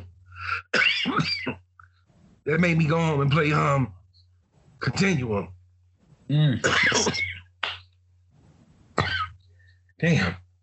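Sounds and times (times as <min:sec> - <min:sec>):
dry hacking coughs: 0:00.4 - 0:01.7, 0:06.6 - 0:07.5, 0:09.0 - 0:09.4
speech: 0:02.4 - 0:04.0, 0:04.8 - 0:05.6, 0:06.3 - 0:07.3, 0:10.0 - 0:10.4.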